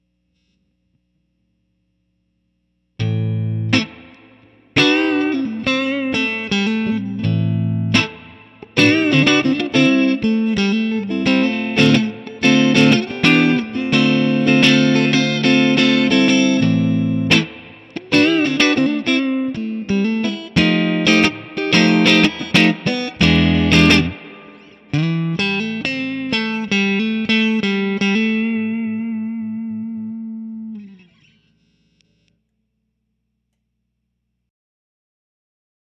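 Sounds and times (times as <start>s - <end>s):
warm blues guitars: 3.0s - 31.5s.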